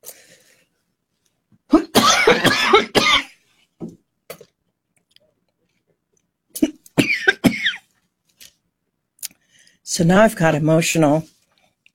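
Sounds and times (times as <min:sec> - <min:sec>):
person in a coughing fit: 0:01.7 - 0:03.4, 0:06.6 - 0:07.9
speech: 0:10.0 - 0:11.3.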